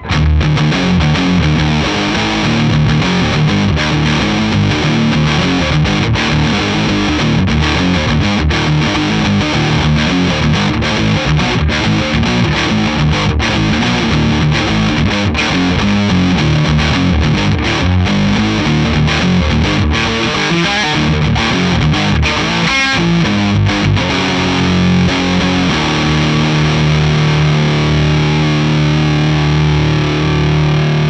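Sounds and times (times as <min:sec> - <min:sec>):
distorted Les Paul electric guitar through Egnater amplifier: 0:00.0 - 0:31.0.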